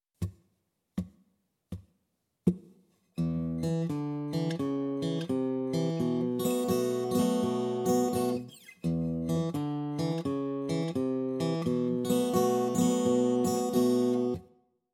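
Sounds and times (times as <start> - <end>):
blues guitar in open tuning: 3.2 - 14.4.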